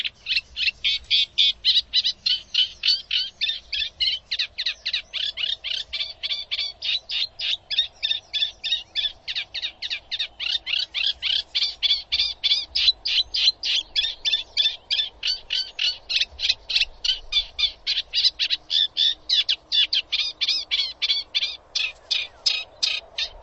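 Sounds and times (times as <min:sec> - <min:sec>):
bird chirping rapidly: 0:00.0 - 0:23.4.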